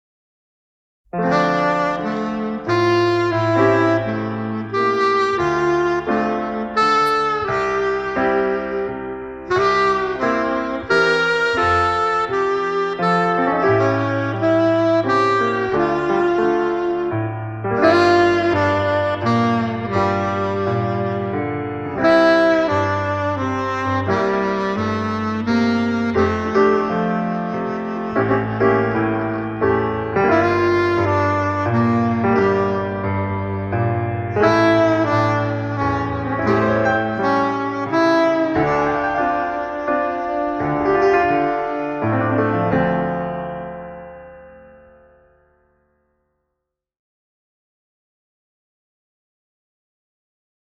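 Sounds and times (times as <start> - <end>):
hotel piano: 1.0 - 46.7
hotel saxophone: 1.1 - 45.3.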